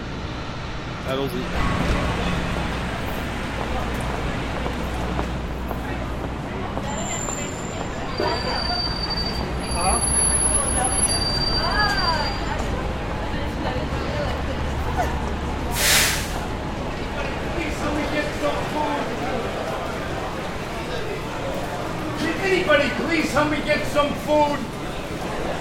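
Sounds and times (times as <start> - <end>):
subway train rumbling through World Trade Center metro station in New York: 0.0 - 25.5
faint crowd murmur: 1.0 - 25.5
speech: 1.1 - 2.0, 22.5 - 24.8
high thin subway train wheel squeals: 6.8 - 12.8.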